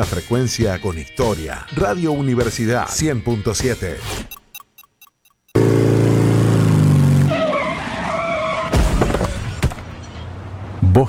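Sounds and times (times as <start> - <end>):
speech: 0.0 - 4.3
sharp harsh bursts: 3.9 - 5.6
faint clicks: 4.3 - 5.6
motorcycle tires screeching in skids: 5.6 - 10.5.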